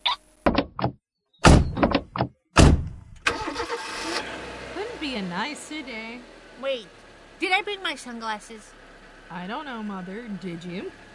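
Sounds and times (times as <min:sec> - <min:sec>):
door opening and shutting: 0:00.4 - 0:03.4
speech: 0:05.0 - 0:11.0.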